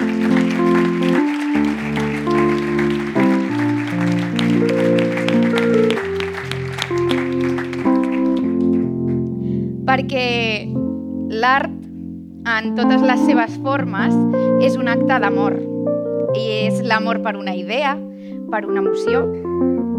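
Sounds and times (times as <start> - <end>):
audience applause: 0.0 - 9.0
loud sustained music chords: 0.0 - 16.4
speech: 11.4 - 11.7, 12.5 - 15.6, 16.4 - 19.8.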